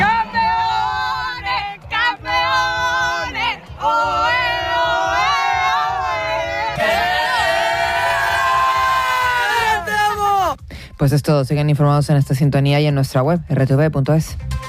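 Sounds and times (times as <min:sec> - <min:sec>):
large crowd cheering and shouting at a football final screening: 0:00.0 - 0:10.6
speech: 0:11.0 - 0:14.4.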